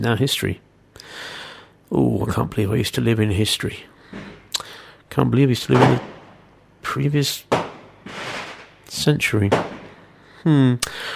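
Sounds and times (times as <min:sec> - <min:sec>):
speech: 0:00.0 - 0:04.3, 0:05.1 - 0:06.1, 0:06.9 - 0:08.2, 0:08.9 - 0:09.7, 0:10.4 - 0:11.1
rumbling fireworks bangs outside: 0:07.5 - 0:10.0.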